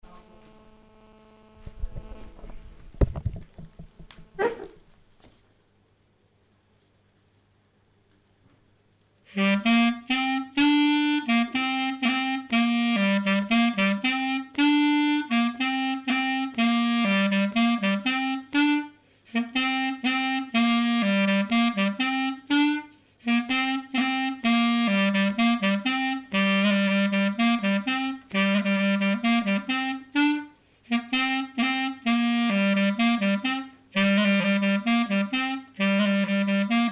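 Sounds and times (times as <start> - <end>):
slow clarinet variation: 9.3 - 36.8.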